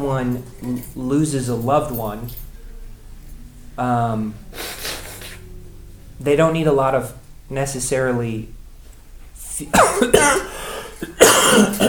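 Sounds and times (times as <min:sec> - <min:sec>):
speech: 0:00.0 - 0:02.5, 0:03.8 - 0:04.6, 0:06.2 - 0:08.6, 0:09.6 - 0:10.4
lingering adult cough: 0:09.7 - 0:11.8.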